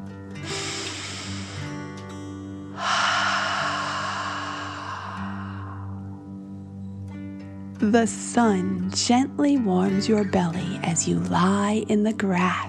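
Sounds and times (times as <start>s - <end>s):
slow deep breathing during a guided relaxation exercise: 0.4s - 6.8s
speech: 7.8s - 12.6s.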